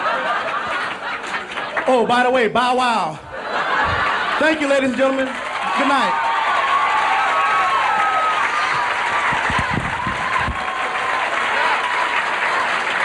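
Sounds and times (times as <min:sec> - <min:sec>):
large audience applauding: 0:00.0 - 0:02.4, 0:03.6 - 0:13.0
laughter: 0:00.0 - 0:06.1
speech: 0:01.9 - 0:06.2
faint cheers: 0:05.5 - 0:13.0.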